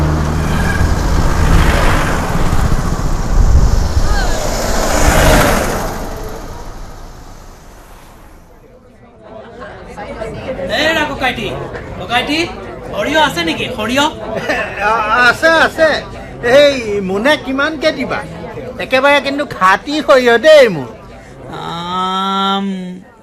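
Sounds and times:
cars and motor vehicles passing on a roadside near a market: 0.0s - 8.8s
people chattering: 2.1s - 23.2s.

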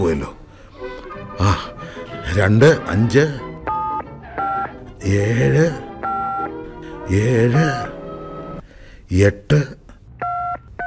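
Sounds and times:
person talking: 1.4s - 3.5s, 5.0s - 6.0s, 6.9s - 8.0s, 9.1s - 10.0s
telephone keypad tones as someone dials a number: 3.7s - 4.7s, 5.6s - 6.5s, 10.2s - 10.8s.

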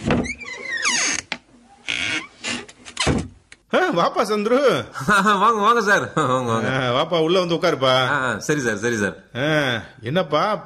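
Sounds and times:
door creaking open at home: 0.0s - 3.4s
speech: 3.9s - 10.6s.

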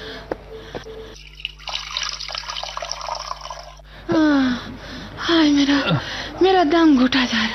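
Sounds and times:
water running from a tap into a vessel: 1.3s - 3.8s
speech: 5.4s - 7.5s.

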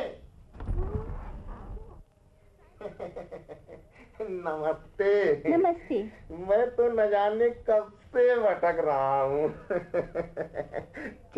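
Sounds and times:
door opening with a low rumbling mechanical scrape: 0.6s - 2.0s
laughter: 2.8s - 4.2s, 9.4s - 11.2s
speech: 4.2s - 11.3s.

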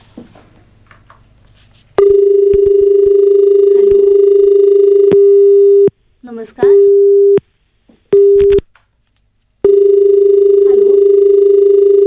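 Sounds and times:
steady telephone line tone for an incoming call: 2.0s - 5.9s, 6.7s - 7.4s, 8.2s - 8.6s, 9.6s - 12.0s
speech: 6.5s - 6.9s.

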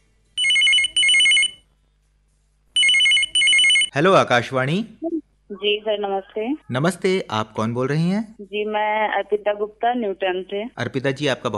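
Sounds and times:
telephone ringing for incoming call to a radio phone-in programme: 0.4s - 1.6s, 2.8s - 3.9s
speech: 3.9s - 5.0s, 5.6s - 11.5s.

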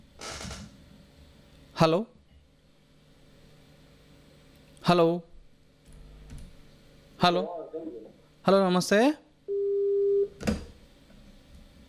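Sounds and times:
speech: 1.8s - 2.2s, 4.9s - 5.3s, 7.2s - 9.2s
steady mid-pitched telephone tone on a radio phone-in line after a cut-off call: 9.5s - 10.4s.

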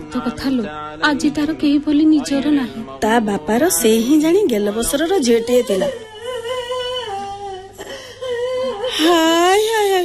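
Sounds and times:
speech: 0.1s - 6.0s, 9.0s - 9.6s
grandmother crying with wails and sobs: 5.2s - 10.0s.

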